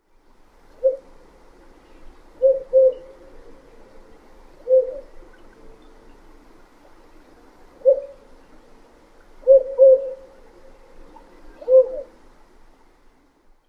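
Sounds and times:
spotted owl song: 0:00.7 - 0:12.2.

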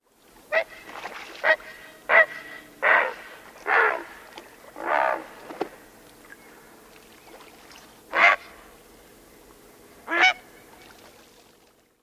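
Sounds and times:
Great Blue Heron croaking upon landing: 0:01.4 - 0:05.4, 0:08.1 - 0:08.6, 0:10.1 - 0:10.5.

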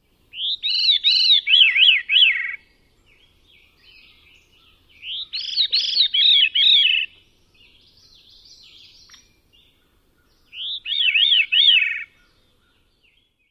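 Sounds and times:
Veery song: 0:00.0 - 0:13.5.

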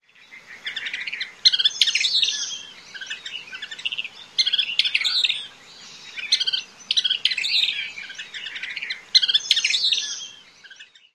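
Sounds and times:
thick-billed kingbird song: 0:00.0 - 0:11.1.

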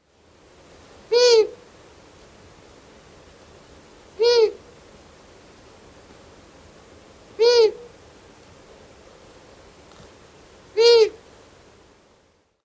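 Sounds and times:
female long-eared owl harsh hoots: 0:01.1 - 0:01.6, 0:04.2 - 0:04.6, 0:07.4 - 0:07.9, 0:10.8 - 0:11.2.

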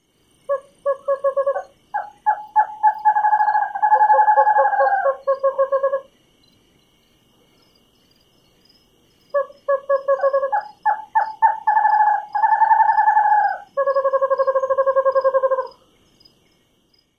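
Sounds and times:
pair of birds singing: 0:00.4 - 0:08.6, 0:09.3 - 0:16.9.

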